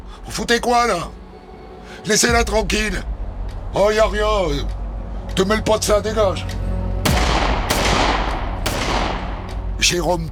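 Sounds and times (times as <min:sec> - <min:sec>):
speech: 0:00.2 - 0:01.2, 0:02.0 - 0:03.1, 0:03.7 - 0:04.8, 0:05.4 - 0:06.6, 0:09.9 - 0:10.2
handgun firing rubber bullets at a motorcyclist: 0:07.1 - 0:09.7.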